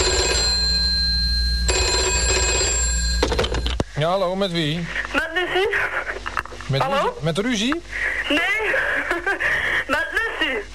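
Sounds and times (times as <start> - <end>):
telephone ringing with electronic trill: 0.0 - 3.8
speech: 4.0 - 6.1, 6.7 - 10.7.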